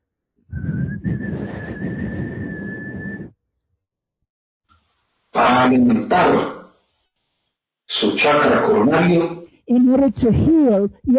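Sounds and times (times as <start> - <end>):
man whistling one long steady note: 0.5 - 3.4
speech: 5.7 - 6.6, 8.1 - 11.1.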